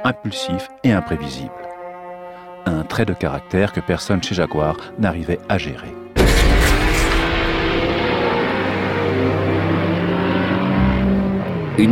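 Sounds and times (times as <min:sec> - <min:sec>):
speech: 0:00.0 - 0:01.7, 0:03.0 - 0:06.0, 0:11.8 - 0:11.9
racing cars speeding down the Hunaudières straight: 0:06.3 - 0:11.9.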